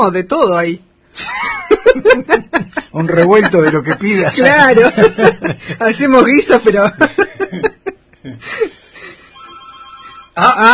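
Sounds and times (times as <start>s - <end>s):
speech: 0.0s - 8.8s, 10.4s - 10.7s
laughter: 1.2s - 8.8s
telephone ringing with an electronic trill: 9.3s - 10.4s.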